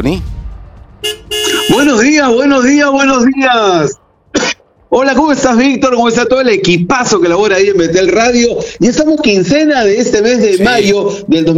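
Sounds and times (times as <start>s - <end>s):
speech: 0.0s - 0.3s, 1.0s - 4.0s, 4.9s - 11.5s
car horn honking as a driver pulls up at a building's gate in Santa Beatriz: 1.0s - 2.1s, 10.5s - 11.0s.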